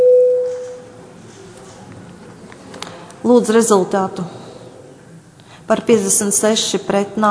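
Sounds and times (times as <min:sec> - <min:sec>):
parliamentary voting bell electronic tone: 0:00.0 - 0:00.8
speech: 0:03.2 - 0:04.4, 0:05.7 - 0:07.2.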